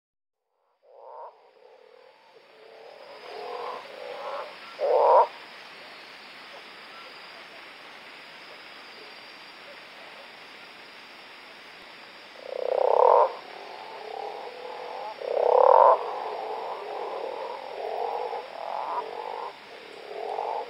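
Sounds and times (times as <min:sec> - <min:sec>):
Osteocephalus taurinus calling: 0:00.8 - 0:05.4, 0:12.4 - 0:20.6.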